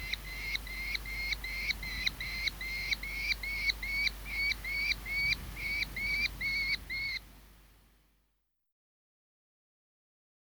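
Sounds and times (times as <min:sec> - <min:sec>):
merlin giving nasal notes: 0:00.0 - 0:07.3.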